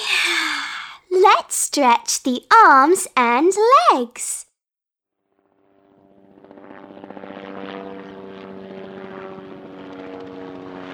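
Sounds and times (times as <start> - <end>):
speech: 1.2 - 4.4
propeller airplane engine droning: 5.5 - 10.9.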